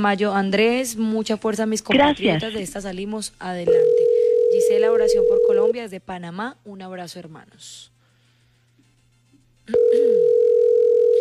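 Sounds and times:
speech: 0:00.0 - 0:07.9, 0:09.7 - 0:11.1
telephone tone on an unanswered call: 0:03.7 - 0:05.7, 0:09.7 - 0:11.1.

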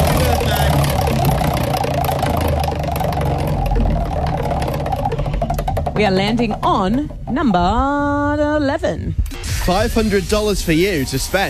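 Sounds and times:
birthday prize wheel spinning with rattling clicks: 0:00.0 - 0:08.0
speech: 0:06.0 - 0:11.4.

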